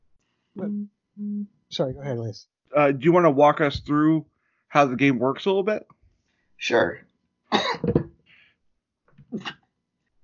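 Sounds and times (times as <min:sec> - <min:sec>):
speech: 0:00.6 - 0:06.0, 0:06.6 - 0:07.1
cough: 0:07.5 - 0:08.2, 0:09.3 - 0:09.8.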